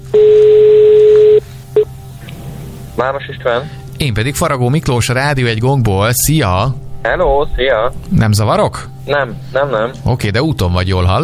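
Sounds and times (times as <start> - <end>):
telephone ringing tone on an outgoing call: 0.0 - 1.9
faint low hum: 0.0 - 11.2
speech: 3.0 - 11.2.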